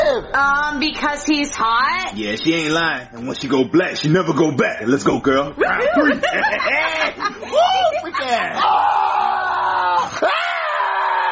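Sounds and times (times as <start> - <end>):
speech: 0.1 - 9.1
laughter: 5.6 - 10.3
person screaming: 8.5 - 11.3.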